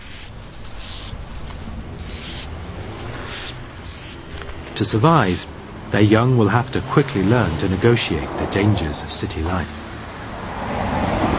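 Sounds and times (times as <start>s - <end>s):
owl hooting: 0.0s - 1.2s, 1.9s - 4.3s, 4.9s - 5.5s, 6.5s - 7.7s
outdoor hiss: 0.0s - 10.4s
speech: 4.8s - 9.8s.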